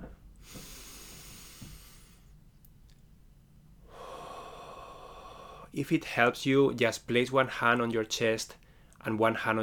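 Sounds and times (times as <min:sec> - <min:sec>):
airy deep breathing: 0:00.4 - 0:02.4, 0:03.8 - 0:05.8
speech: 0:05.8 - 0:09.6.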